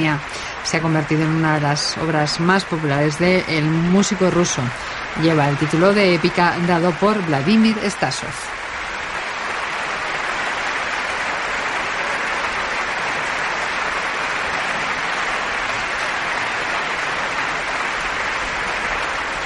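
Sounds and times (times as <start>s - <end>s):
speech: 0.0s - 8.6s
large concert audience applauding a symphony orchestra: 0.0s - 19.4s.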